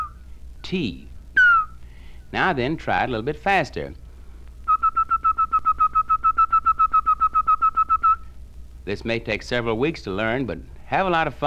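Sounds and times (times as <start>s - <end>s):
rapid short tongued whistle notes at a steady pitch: 0.0s - 0.2s, 1.4s - 1.8s, 4.7s - 8.3s
speech: 0.6s - 1.1s, 2.3s - 4.0s, 8.8s - 11.4s.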